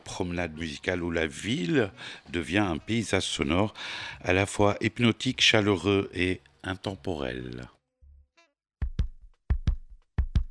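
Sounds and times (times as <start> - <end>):
speech: 0.2 - 7.8
heartbeat: 8.8 - 10.5.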